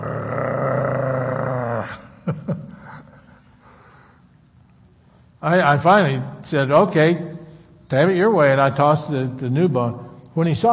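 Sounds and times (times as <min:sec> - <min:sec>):
voice imitating a dog growling: 0:00.0 - 0:02.2
speech: 0:05.4 - 0:07.3, 0:07.9 - 0:10.7.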